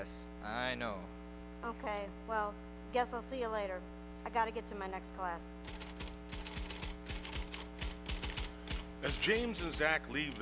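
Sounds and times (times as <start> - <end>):
speech: 0.0 - 5.8, 9.0 - 10.3
typewriter keystrokes typing a letter in a headmaster's office: 5.7 - 10.3.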